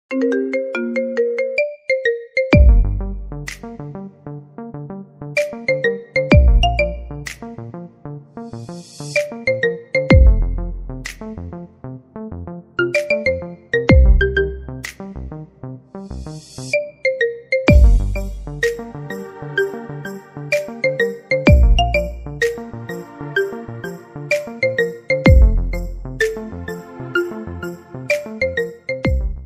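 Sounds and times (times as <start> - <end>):
marimba ringtone: 0.1 - 3.0, 5.4 - 7.1, 9.0 - 10.6, 12.8 - 14.7, 16.7 - 29.4.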